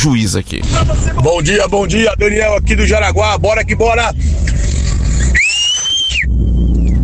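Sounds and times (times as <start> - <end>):
speech: 0.0 - 5.4
rumbling noise: 0.0 - 7.0
puckered-lip whistle: 5.3 - 7.0.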